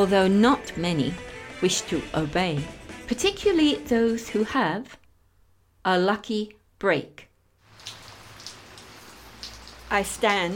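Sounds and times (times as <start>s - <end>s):
speech: 0.0s - 5.0s, 5.8s - 7.3s, 9.9s - 10.5s
distinct drip impacts: 7.6s - 10.5s
light rain pattering: 7.6s - 10.5s.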